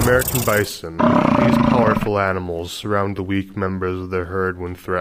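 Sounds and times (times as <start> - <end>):
speech: 0.1 - 4.9
lone wolf howling: 1.0 - 2.1.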